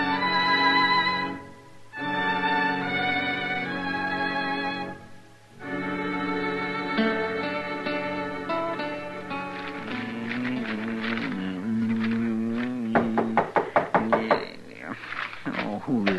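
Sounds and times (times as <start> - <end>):
sustained musical passage: 0.0 - 13.6
loud knocking on a door: 12.9 - 14.5.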